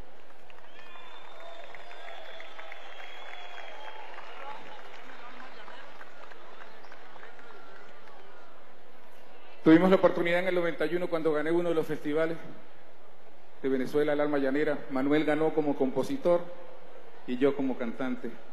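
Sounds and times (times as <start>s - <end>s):
audience applause at a music event: 0.0s - 8.7s
speech: 9.7s - 12.8s, 13.6s - 16.7s, 17.3s - 18.5s.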